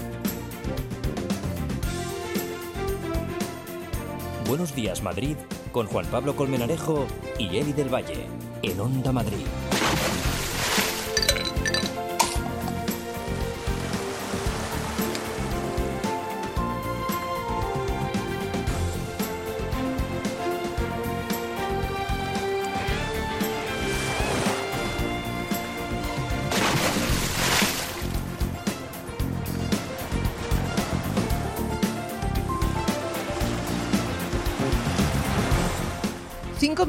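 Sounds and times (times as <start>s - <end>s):
steady music: 0.0s - 36.8s
speech: 4.5s - 10.0s
sea waves surging and washing in: 9.4s - 36.8s.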